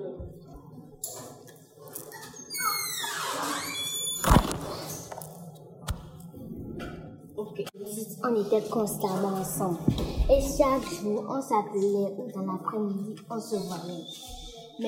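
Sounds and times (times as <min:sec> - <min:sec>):
door creaking open: 0:02.1 - 0:05.3
speech: 0:08.2 - 0:14.8.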